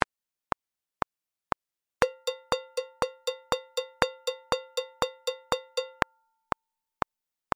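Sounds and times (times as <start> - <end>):
eighth-note delay effect: 2.0 - 6.2.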